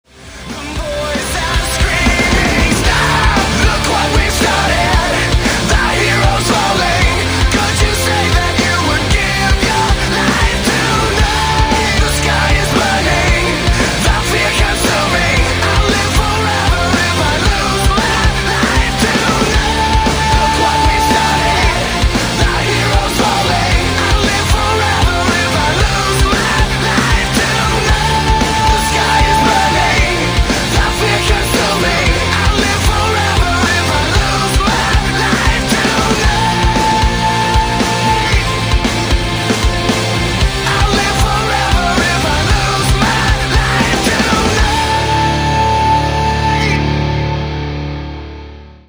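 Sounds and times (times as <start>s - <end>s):
alternative metal music: 0.0s - 48.8s.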